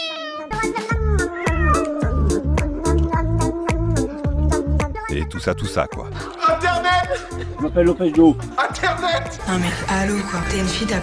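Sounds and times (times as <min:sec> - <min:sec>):
cat meowing: 0:00.0 - 0:05.1
upbeat music track with a steady thumping beat: 0:00.6 - 0:11.0
speech: 0:05.3 - 0:11.0.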